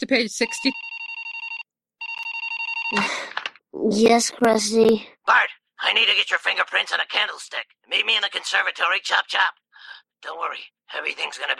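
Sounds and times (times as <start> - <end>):
speech: 0.0 - 0.9, 2.9 - 11.5
cell phone ringing with electronic warble in a cartoon classroom: 0.4 - 3.2.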